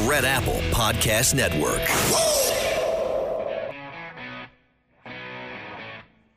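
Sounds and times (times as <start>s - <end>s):
speech: 0.1s - 2.4s
loud noisy whoosh-like crash in a show jingle: 1.9s - 3.8s.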